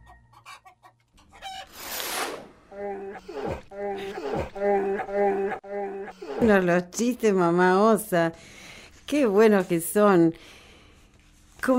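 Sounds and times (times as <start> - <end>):
person imitating a chicken clucking: 2.7 - 6.5
speech: 6.4 - 10.6.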